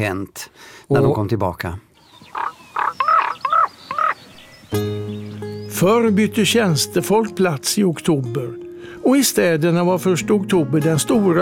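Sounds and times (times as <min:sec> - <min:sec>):
speech: 0:00.0 - 0:02.5, 0:04.7 - 0:04.9, 0:05.8 - 0:11.4
common raven croaking: 0:02.0 - 0:04.6.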